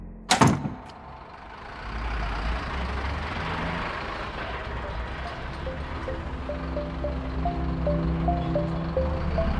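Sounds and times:
door shutting with a loud thud: 0:00.3 - 0:01.1
low engine rumble with faint rising whine: 0:00.7 - 0:09.5.

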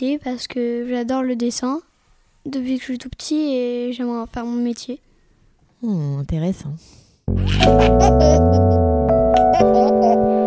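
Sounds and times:
speech: 0:00.0 - 0:05.1, 0:05.8 - 0:08.8
baby laughing: 0:07.3 - 0:10.4.

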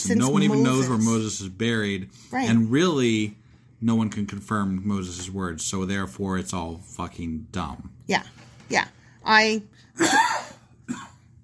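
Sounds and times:
speech: 0:00.0 - 0:10.2
person coughing: 0:10.0 - 0:11.3.

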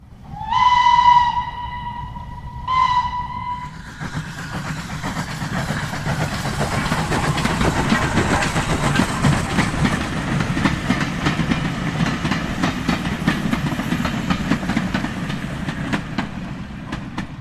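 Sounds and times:
steam train chugging and rattling: 0:00.2 - 0:17.3
steam train whistle blasts: 0:00.3 - 0:03.8.

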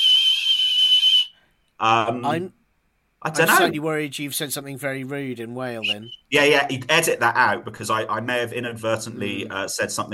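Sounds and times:
person whistling in imitation of whale song: 0:00.0 - 0:01.4
speech: 0:01.8 - 0:02.6, 0:03.2 - 0:10.1.

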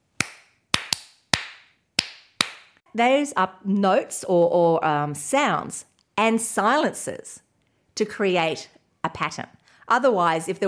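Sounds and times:
hands clapping a rhythm: 0:00.1 - 0:02.8
speech: 0:03.0 - 0:07.4, 0:08.0 - 0:10.6.

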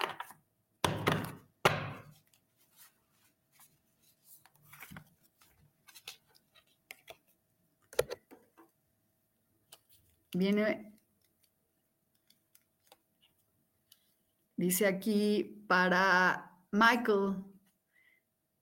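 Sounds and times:
deck of cards being shuffled: 0:02.0 - 0:08.5, 0:09.6 - 0:14.0
speech: 0:10.4 - 0:10.9, 0:14.6 - 0:17.5.

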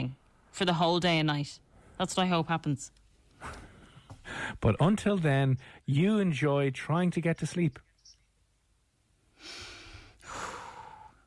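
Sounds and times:
speech: 0:00.0 - 0:03.6, 0:04.3 - 0:07.8
deep breaths: 0:03.3 - 0:04.6, 0:05.6 - 0:05.9, 0:09.3 - 0:11.2.

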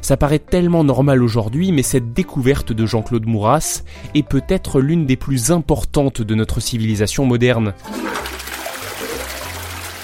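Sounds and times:
speech: 0:00.0 - 0:08.4
toilet flushing with gurgling water: 0:07.8 - 0:10.0.

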